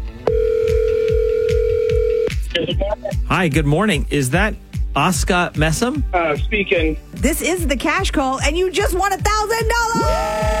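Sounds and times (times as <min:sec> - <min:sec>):
electronic ring tone of a phone ringing on the line: 0:00.3 - 0:02.3
speech: 0:03.3 - 0:10.5.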